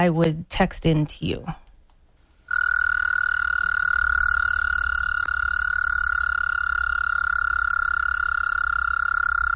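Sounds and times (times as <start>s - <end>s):
speech: 0.0s - 1.6s
American toad trilling call: 2.5s - 9.5s.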